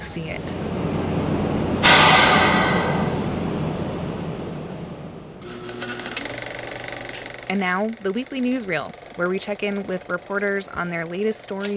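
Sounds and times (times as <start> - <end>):
loud rushing hiss: 0.0 - 5.4
luxury passenger train in Moab rumbling: 0.0 - 6.2
speech: 0.2 - 0.8, 7.5 - 11.7.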